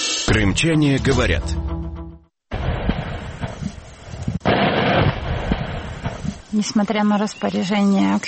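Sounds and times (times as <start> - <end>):
speech: 0.3 - 1.7, 6.6 - 8.2
blast at a limestone quarry: 2.5 - 3.8, 4.4 - 6.4
loud sustained rolling rumble of a quarry blast: 2.5 - 7.3.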